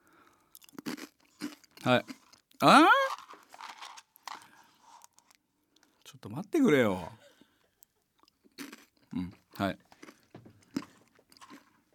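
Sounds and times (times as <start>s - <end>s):
crunchy snack being chewed: 0.4s - 5.4s, 8.2s - 11.8s
speech: 1.8s - 3.0s, 6.2s - 7.2s, 9.2s - 9.8s.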